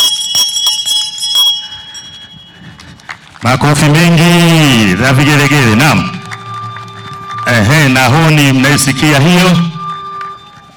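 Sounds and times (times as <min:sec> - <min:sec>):
metallic bell struck at a formal ceremony: 0:00.0 - 0:02.9, 0:03.7 - 0:10.7
speech: 0:03.4 - 0:06.2, 0:07.5 - 0:09.7.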